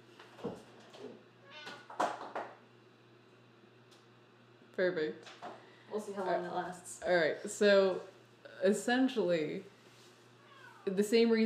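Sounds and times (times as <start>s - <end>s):
steady low electrical hum: 0.0s - 11.4s
cat meowing: 1.4s - 1.9s, 10.4s - 10.9s
speech: 4.8s - 9.7s, 10.9s - 11.4s.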